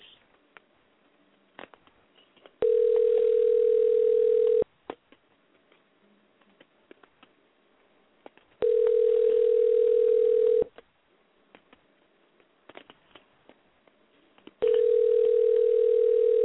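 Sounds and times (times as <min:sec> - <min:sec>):
telephone ringing tones on an outgoing call: 0:02.6 - 0:04.7, 0:08.6 - 0:10.7, 0:14.6 - 0:16.4.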